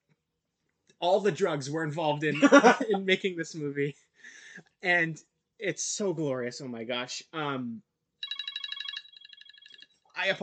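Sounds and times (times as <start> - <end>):
speech: 1.0 - 7.9, 10.2 - 10.4
laughter: 2.2 - 3.5
phone alarm ringing in a rapid electronic trill: 8.2 - 10.0.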